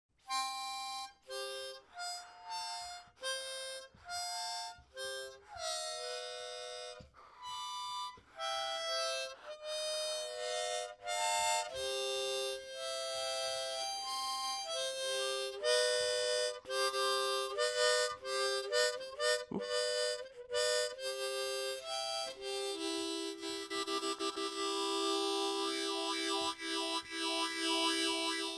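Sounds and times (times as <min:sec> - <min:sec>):
harmonica: 0:00.2 - 0:28.5.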